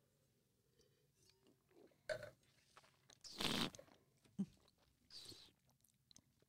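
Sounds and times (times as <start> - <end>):
person slurping red wine while tasting: 3.3 - 4.0.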